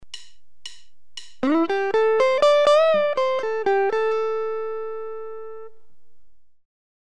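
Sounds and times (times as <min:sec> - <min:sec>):
guitar string bend and release in a lead lick: 0:00.1 - 0:05.7.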